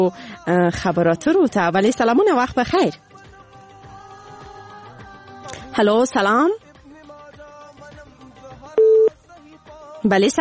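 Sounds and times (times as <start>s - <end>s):
speech: 0.0s - 3.0s, 5.8s - 6.6s, 10.0s - 10.4s
telephone busy tone after a dropped call: 8.8s - 9.1s.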